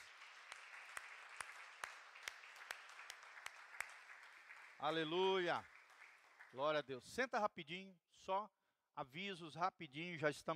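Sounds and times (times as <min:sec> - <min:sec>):
audience applauding: 0:00.0 - 0:06.9
speech: 0:04.8 - 0:05.8, 0:06.5 - 0:10.5.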